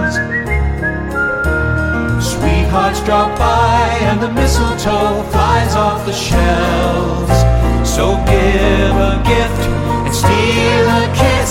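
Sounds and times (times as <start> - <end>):
shopkeeper whistling a song to himself while sweeping: 0.0 - 2.4
steady instrumental music: 0.0 - 11.4.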